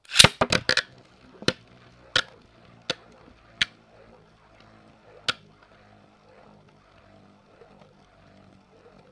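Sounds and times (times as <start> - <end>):
beyblade spinning top: 0.0 - 9.0.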